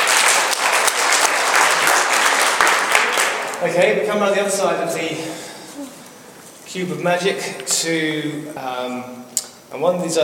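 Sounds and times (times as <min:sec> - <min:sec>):
crowd applauding: 0:00.0 - 0:03.7
speech: 0:03.6 - 0:06.0, 0:06.7 - 0:10.2.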